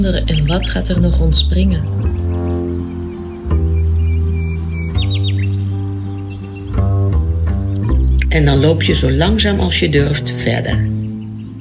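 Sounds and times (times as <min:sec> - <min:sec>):
speech: 0:00.0 - 0:02.2, 0:08.4 - 0:11.0
nightingale singing: 0:00.0 - 0:11.6
sustained warm instrumental tones: 0:00.0 - 0:11.6.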